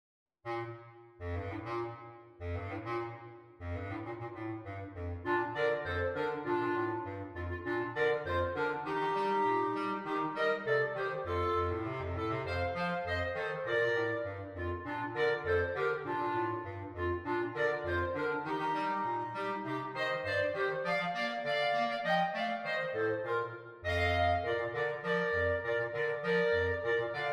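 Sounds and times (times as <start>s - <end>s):
clarinet playing a Christmas tune: 0.5s - 27.3s.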